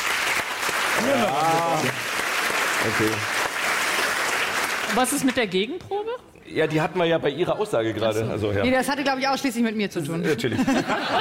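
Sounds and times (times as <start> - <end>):
studio audience clapping during a show-of-hands vote: 0.0 - 5.7
speech: 1.0 - 2.0, 2.8 - 3.4, 4.9 - 11.1
laughter: 10.2 - 11.1.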